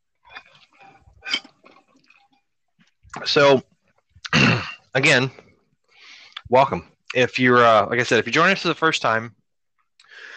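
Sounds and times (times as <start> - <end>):
person taking a drink, sipping and swallowing: 0.2 - 3.2
speech: 3.3 - 3.7, 5.0 - 5.4, 6.5 - 9.4.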